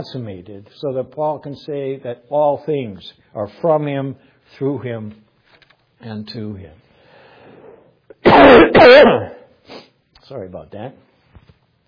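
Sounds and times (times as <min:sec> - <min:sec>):
speech: 0:00.0 - 0:05.2, 0:06.0 - 0:06.8, 0:08.2 - 0:11.1
person coughing into elbow: 0:08.2 - 0:09.5.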